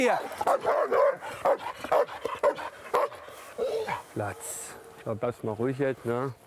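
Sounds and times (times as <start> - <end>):
speech: 0.0 - 1.7, 4.2 - 6.4
dog barking with short yips: 0.4 - 4.0.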